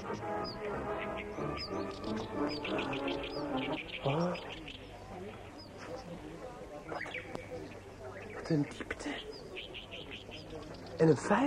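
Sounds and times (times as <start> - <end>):
birds chirping: 0.0 - 11.4
speech: 0.1 - 4.8, 8.5 - 9.3, 11.0 - 11.4.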